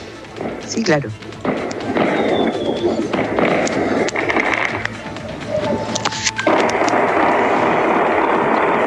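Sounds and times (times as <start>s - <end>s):
loud noisy commotion: 0.0s - 8.8s
speech: 0.7s - 1.3s
dense barrage of sharp cracks and pops of gunshots and fireworks: 3.2s - 5.0s, 5.9s - 8.8s.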